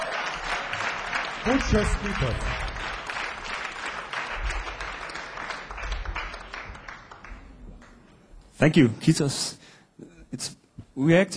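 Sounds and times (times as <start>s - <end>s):
audience clapping: 0.0s - 8.5s
speech: 1.4s - 2.7s, 8.6s - 9.6s, 10.3s - 11.3s.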